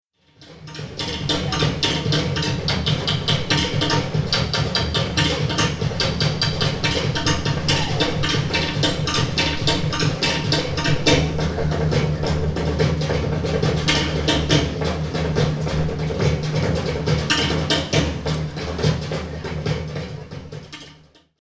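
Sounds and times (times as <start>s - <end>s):
Tahiti drums: 0.2s - 21.3s.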